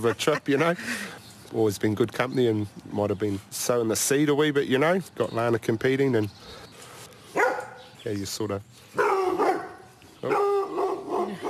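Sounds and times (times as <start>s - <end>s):
speech: 0.0s - 6.6s, 8.0s - 9.0s
farm dog barking and yipping in a sheep paddock: 7.4s - 7.8s, 9.0s - 11.4s.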